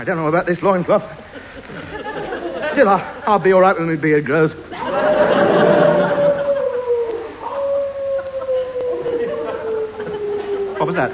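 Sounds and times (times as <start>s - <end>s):
speech: 0.0s - 2.0s, 2.8s - 5.5s, 11.0s - 11.1s
laughter: 1.2s - 3.3s, 4.7s - 11.1s
dog howling: 4.9s - 11.1s.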